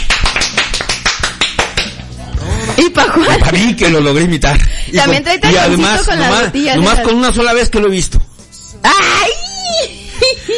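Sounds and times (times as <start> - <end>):
rhythmic applause for women performers: 0.0 - 4.2
laughter: 2.4 - 4.0, 9.9 - 10.5
speech: 3.2 - 8.2.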